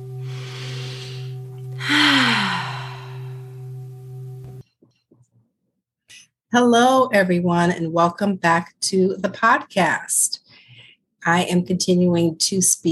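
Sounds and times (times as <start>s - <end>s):
steady low hum: 0.0s - 4.6s
deep breath drawn in and let out: 0.1s - 3.6s
speech: 6.5s - 10.4s, 11.2s - 12.8s.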